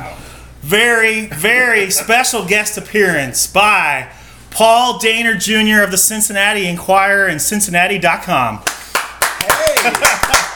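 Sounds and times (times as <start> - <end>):
speech: 0.6 - 8.8
hands clapping in a kitchen: 8.6 - 10.5
people laughing in a kitchen: 9.4 - 10.5.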